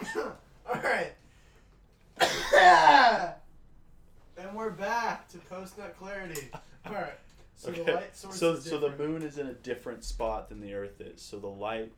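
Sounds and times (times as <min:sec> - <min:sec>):
person coughing: 0:00.0 - 0:01.2, 0:02.2 - 0:03.4
speech: 0:08.3 - 0:11.9.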